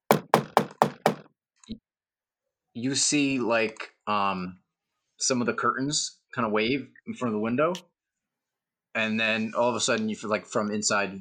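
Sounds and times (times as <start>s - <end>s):
knocking on a door: 0.0s - 1.3s
speech: 2.8s - 4.6s, 5.2s - 7.9s, 9.0s - 11.1s.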